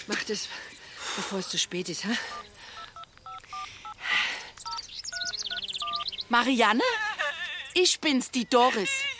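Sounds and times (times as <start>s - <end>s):
speech: 0.1s - 2.5s, 6.3s - 7.1s, 7.7s - 9.1s
mobile phone keypad two-tone dialing beeps: 1.4s - 4.0s, 4.6s - 6.1s.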